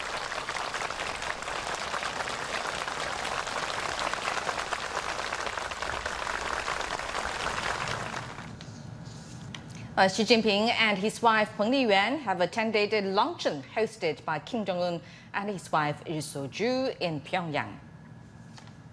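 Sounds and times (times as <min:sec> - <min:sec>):
large crowd of delegates and students applauding at a monument: 0:00.0 - 0:08.6
speech: 0:10.0 - 0:17.8.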